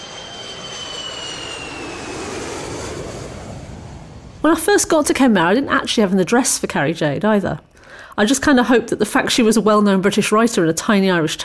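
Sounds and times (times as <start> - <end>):
airplane jet engine roaring on a flight to Ireland: 0.0 - 6.0
speech: 4.4 - 11.4.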